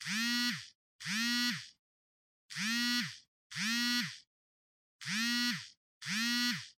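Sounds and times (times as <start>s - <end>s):
cell phone vibrating in hand: 0.0s - 1.8s, 2.5s - 4.3s, 5.0s - 6.7s.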